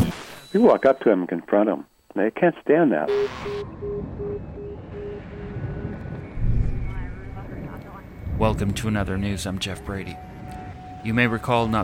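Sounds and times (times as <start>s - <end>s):
speech: 0.5s - 4.2s, 8.4s - 10.3s, 11.0s - 11.8s
helicopter hovering overhead with wind-buffeted rumble: 3.6s - 11.8s.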